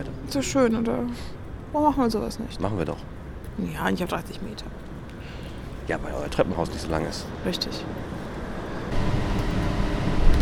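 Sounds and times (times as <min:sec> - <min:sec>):
speech: 0:00.0 - 0:04.9, 0:05.9 - 0:08.1
tram wheels and motor rumbling during a ride: 0:00.0 - 0:10.4.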